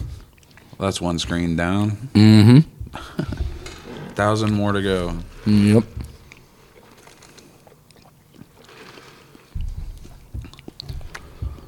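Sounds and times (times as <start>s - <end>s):
chewing a crunchy taco: 0.0s - 1.5s, 5.8s - 11.6s
speech: 0.8s - 3.4s, 4.2s - 6.1s.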